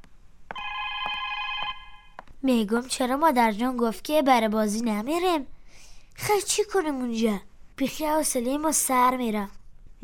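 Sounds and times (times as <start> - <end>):
telephone ringing with an electronic bell-like trill: 0.5 - 2.2
speech: 2.4 - 5.6, 6.2 - 10.0.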